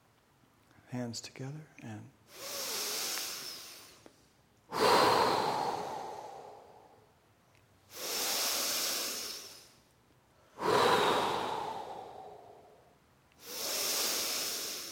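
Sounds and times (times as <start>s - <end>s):
speech: 0.9s - 2.6s
deep breathing in a yoga breathing exercise: 2.3s - 4.1s, 4.7s - 7.1s, 7.9s - 14.9s.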